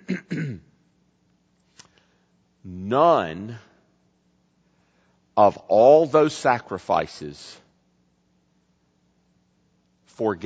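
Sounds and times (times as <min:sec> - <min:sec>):
man clearing his throat at a microphone: 0:00.0 - 0:00.8
speech: 0:02.9 - 0:03.7, 0:05.4 - 0:07.6, 0:10.2 - 0:10.4.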